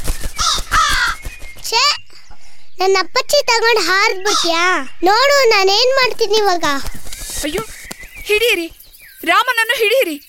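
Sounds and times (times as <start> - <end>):
crow cawing: 0.4 - 1.2, 4.2 - 4.7
speech: 1.7 - 2.0, 2.8 - 10.2.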